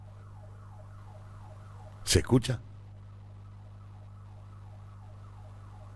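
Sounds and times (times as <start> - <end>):
neighborhood alarm siren in Buenos Aires wailing: 0.0 - 2.2, 3.3 - 5.9
low hum: 0.0 - 5.9
speech: 2.1 - 2.7.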